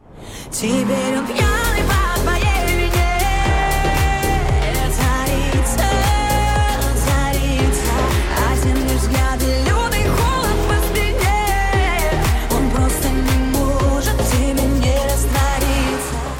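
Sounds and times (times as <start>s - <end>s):
bright synth layers: 0.0s - 16.3s
pop song with female lead vocal: 0.1s - 16.3s
speech: 0.5s - 1.9s
steady punchy dance beat: 1.4s - 16.3s.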